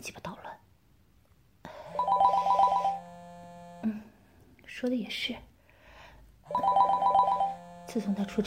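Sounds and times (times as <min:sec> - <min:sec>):
speech: 0:00.0 - 0:00.4, 0:04.8 - 0:05.5, 0:07.9 - 0:08.4
phone ringtone from incoming call: 0:01.9 - 0:03.5, 0:06.5 - 0:08.4.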